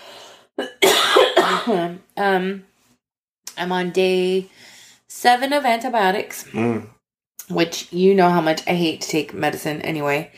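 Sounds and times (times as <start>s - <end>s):
harsh raspy coughing: 0.6s - 2.0s
speech: 1.7s - 2.7s, 3.6s - 10.3s.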